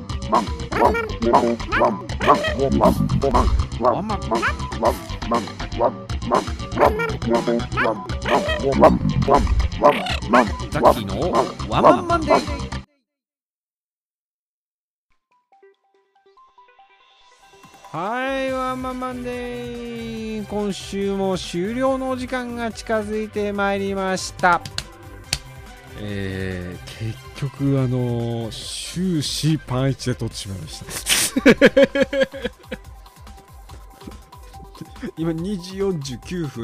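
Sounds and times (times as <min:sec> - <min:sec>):
human voice imitating a dog barking: 0:00.3 - 0:12.7
speech: 0:00.3 - 0:12.8, 0:18.0 - 0:24.8, 0:26.0 - 0:32.9, 0:35.0 - 0:36.6
laughter: 0:30.8 - 0:32.8.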